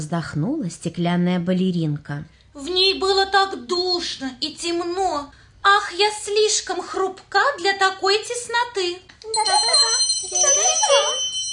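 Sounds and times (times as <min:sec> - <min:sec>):
speech: 0:00.0 - 0:11.3
small bells jingling: 0:09.3 - 0:11.5.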